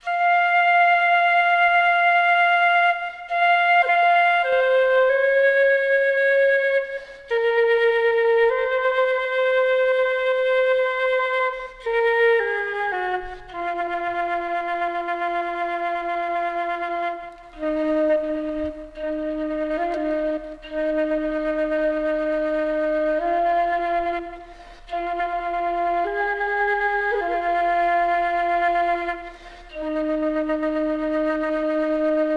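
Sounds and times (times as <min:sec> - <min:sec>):
music: 0:00.0 - 0:32.3.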